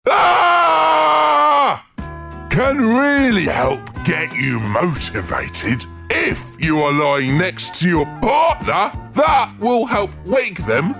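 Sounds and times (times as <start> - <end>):
person screaming loudly on waking up: 0.0 - 1.9
speech: 2.6 - 10.9.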